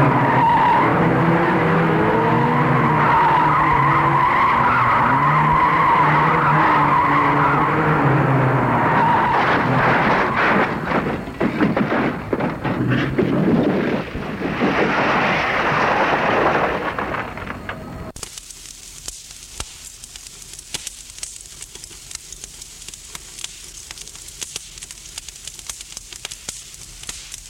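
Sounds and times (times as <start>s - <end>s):
car skidding with tires squealing: 0.0s - 10.9s
burning car fire crackling with hiss and pops: 0.0s - 27.4s.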